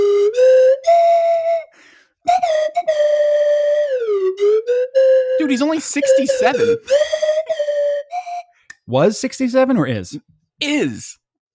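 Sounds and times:
slide whistle playing a melody as hold music: 0.0 - 8.9
speech: 5.5 - 7.2, 8.9 - 11.2.

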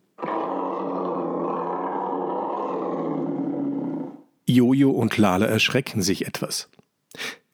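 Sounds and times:
leopard deep rumbling roar: 0.1 - 4.3
speech: 4.5 - 7.4.

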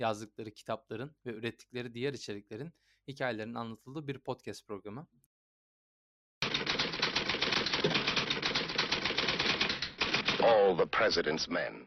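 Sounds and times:
speech: 0.0 - 5.3, 10.4 - 11.8
several typewriters clacking rapidly: 6.4 - 10.4.

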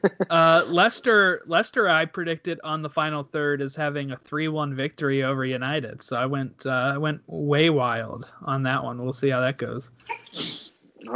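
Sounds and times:
person sneezing: 0.0 - 0.8, 10.1 - 10.8
laughter: 0.0 - 1.4
speech: 0.0 - 11.1.

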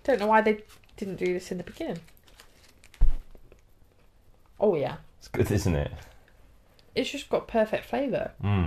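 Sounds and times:
paper chocolate wrapper being unwrapped: 0.0 - 3.6
speech: 0.1 - 2.2, 4.6 - 6.1, 7.0 - 8.6.

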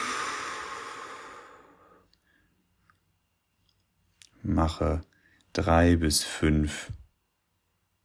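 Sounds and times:
deep breath in through the nose and out through the mouth during a relaxation exercise: 0.0 - 2.7
speech: 4.4 - 7.0.

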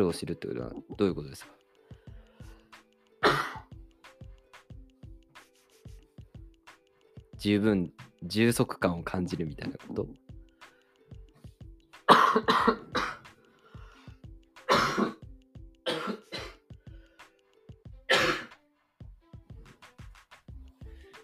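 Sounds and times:
speech: 0.0 - 1.6, 7.4 - 10.2, 12.4 - 13.0
person coughing in sharp harsh bursts: 3.2 - 3.7, 12.1 - 13.3, 14.7 - 16.6, 18.1 - 18.5.

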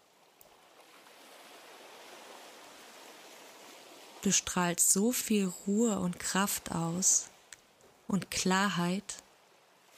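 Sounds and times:
ocean waves washing onto the shore: 0.0 - 9.9
speech: 4.2 - 7.3, 8.1 - 9.2.

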